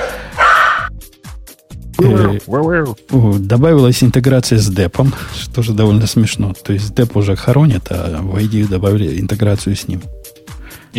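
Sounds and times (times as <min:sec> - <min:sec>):
dog barking: 0:00.0 - 0:00.9
dog yipping: 0:00.3 - 0:00.9
speech: 0:02.0 - 0:10.2.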